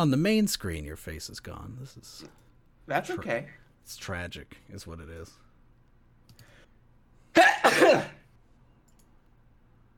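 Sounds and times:
speech: 0:00.0 - 0:05.4, 0:07.4 - 0:08.2
person sneezing: 0:07.3 - 0:08.3.

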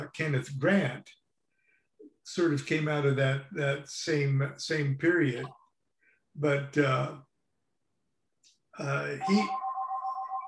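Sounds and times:
speech: 0:00.2 - 0:01.2, 0:02.3 - 0:05.6, 0:06.4 - 0:07.3, 0:08.8 - 0:09.6
mobile phone ringing: 0:09.2 - 0:10.4.

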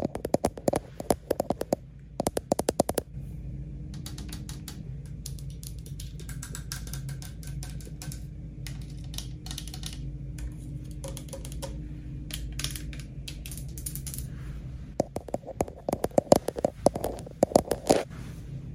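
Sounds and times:
tapping and scratching on a lens in a hotel room: 0:00.0 - 0:03.1, 0:15.0 - 0:18.1
low hotel room hum: 0:00.0 - 0:18.7.

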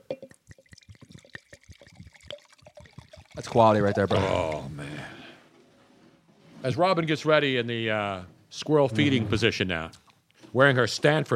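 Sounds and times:
Cab Franc wine glugging from a bottle into a glass: 0:00.0 - 0:05.1
speech: 0:03.4 - 0:04.8, 0:06.6 - 0:11.3.

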